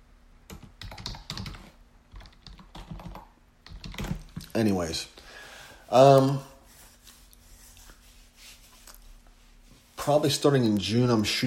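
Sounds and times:
rapid typing on a computer keyboard with plastic keys: 0:00.5 - 0:04.5
speech: 0:04.6 - 0:05.2, 0:05.9 - 0:06.5, 0:10.1 - 0:11.4.

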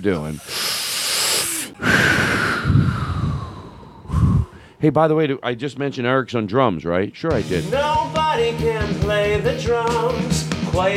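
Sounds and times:
speech: 0:00.0 - 0:00.6, 0:04.8 - 0:10.9
deep breath: 0:00.3 - 0:04.8.

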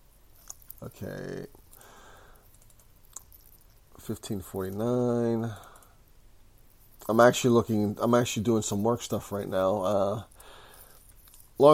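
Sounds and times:
speech: 0:00.8 - 0:01.6, 0:04.0 - 0:05.7, 0:07.1 - 0:10.3, 0:11.6 - 0:11.7
computer mouse clicks: 0:02.4 - 0:03.4.

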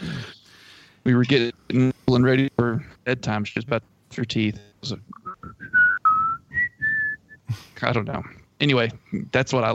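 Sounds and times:
speech: 0:01.0 - 0:05.6, 0:07.5 - 0:09.7
person whistling a movie theme melody: 0:05.2 - 0:07.4.

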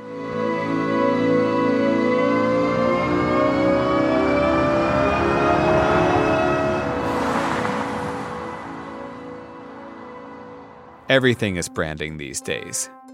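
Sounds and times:
synthesized Nissan electric car acceleration tones: 0:00.1 - 0:11.0
airy whoosh: 0:06.4 - 0:11.0
speech: 0:11.1 - 0:13.0.

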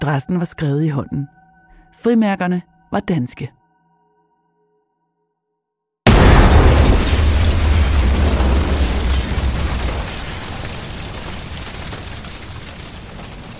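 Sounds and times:
speech: 0:00.0 - 0:03.6
long crackling debris-like hiss: 0:06.1 - 0:13.5
loud letter bomb explosion: 0:06.1 - 0:13.5.

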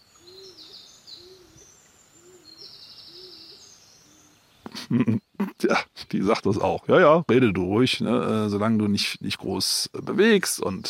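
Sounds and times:
faint high bird twitters: 0:00.0 - 0:05.4
stock dove cooing: 0:00.2 - 0:05.2
laughter: 0:04.7 - 0:06.0
speech: 0:04.9 - 0:10.8.

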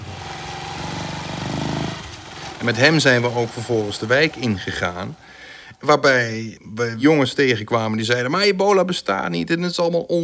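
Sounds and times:
small two-stroke moped engine buzzing as it pulls away: 0:00.0 - 0:05.6
speech: 0:02.6 - 0:10.2.

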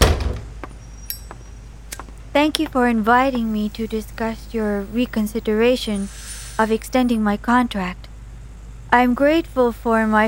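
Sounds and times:
door shutting with a thud: 0:00.0 - 0:00.8
speech: 0:02.4 - 0:08.0, 0:08.9 - 0:10.2.

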